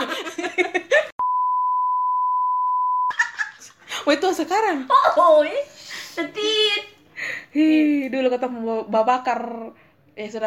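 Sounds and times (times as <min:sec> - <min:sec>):
loud steady censor beep: 0:01.2 - 0:03.1
speech: 0:04.0 - 0:06.9, 0:07.6 - 0:10.4.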